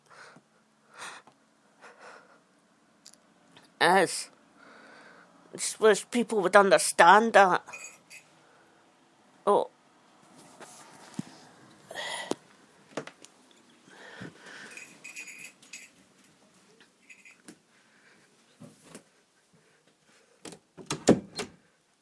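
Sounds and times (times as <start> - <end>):
speech: 3.8 - 4.4, 5.5 - 7.9
shuffling: 10.2 - 20.4
door thuds: 20.8 - 21.6.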